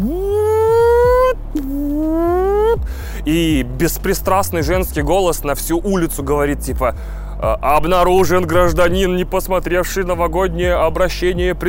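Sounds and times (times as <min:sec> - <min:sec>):
voice imitating an alarm siren: 0:00.0 - 0:02.8
speech: 0:03.3 - 0:11.6.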